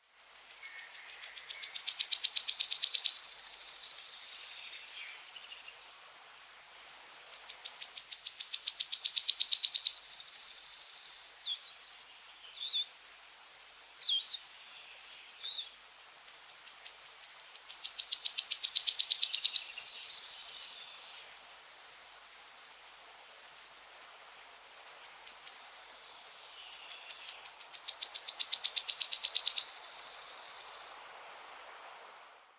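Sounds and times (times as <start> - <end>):
wood warbler singing: 0.1 - 5.8, 7.3 - 12.9, 14.0 - 21.2, 24.8 - 30.9.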